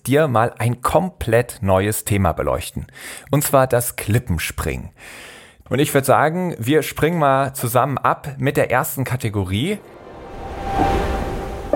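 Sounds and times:
speech: 0:00.1 - 0:10.0
ocean surf rushing: 0:09.8 - 0:11.7.

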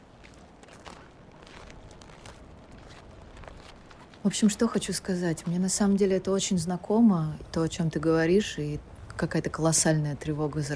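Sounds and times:
footsteps crunching on snow: 0:00.0 - 0:05.7
speech: 0:04.2 - 0:10.7.

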